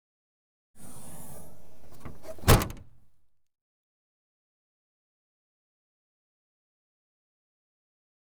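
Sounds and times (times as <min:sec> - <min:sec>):
car exterior hatch opening automatically: 0:00.8 - 0:03.2.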